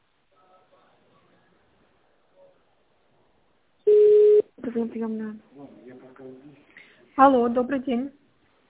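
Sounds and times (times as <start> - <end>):
telephone keypad tones dialing an extension number: 3.9 - 4.4
speech: 4.7 - 5.7, 7.1 - 8.2.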